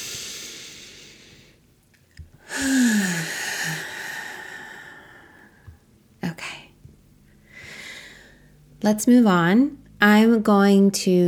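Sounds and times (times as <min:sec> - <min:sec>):
deep breath: 0:00.0 - 0:01.6, 0:02.4 - 0:05.8, 0:07.4 - 0:08.6
low voiced sigh: 0:02.4 - 0:05.4
speech: 0:08.8 - 0:11.2.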